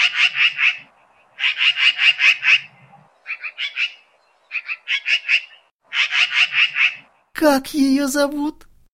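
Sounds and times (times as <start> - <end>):
magpie chattering in harsh rattling bursts: 1.4 - 7.1
speech: 7.4 - 8.7.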